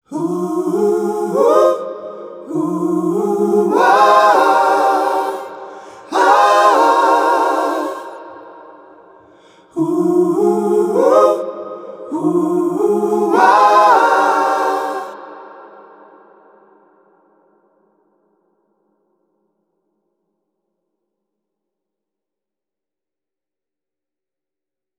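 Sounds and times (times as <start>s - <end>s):
Master Room MR-IV reverb choir sound: 0.0s - 17.5s.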